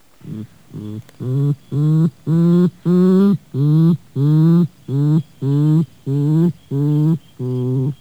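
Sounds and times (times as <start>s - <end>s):
porcupine in a zoo: 0.0s - 7.9s.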